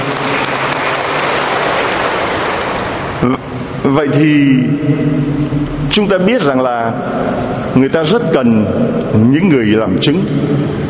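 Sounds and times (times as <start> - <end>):
audience applauding: 0.0 - 3.1
speech: 3.2 - 10.8.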